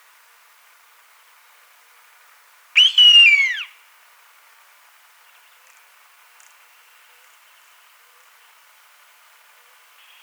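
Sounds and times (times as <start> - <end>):
gray-lined hawk mournful whistle: 2.8 - 3.7.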